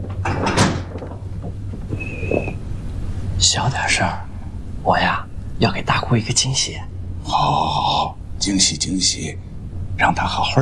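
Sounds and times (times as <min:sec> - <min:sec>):
door being closed: 0:00.0 - 0:02.9
handling noise: 0:00.0 - 0:03.3
faint steady hum: 0:00.0 - 0:10.6
speech: 0:03.4 - 0:10.6.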